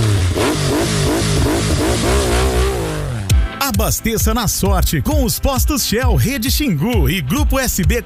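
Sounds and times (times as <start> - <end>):
motorcycle engine revving in quick throttle bursts: 0.0 - 3.6
speech: 3.9 - 8.0.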